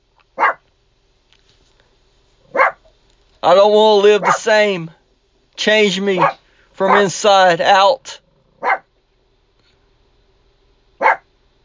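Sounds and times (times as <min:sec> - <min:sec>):
faint steady hum: 0:00.0 - 0:11.6
small female pet dog barking: 0:00.4 - 0:00.6, 0:02.5 - 0:02.9, 0:04.2 - 0:04.5, 0:06.2 - 0:07.1, 0:08.6 - 0:08.9, 0:11.0 - 0:11.3
speech: 0:03.4 - 0:05.0, 0:05.6 - 0:08.2.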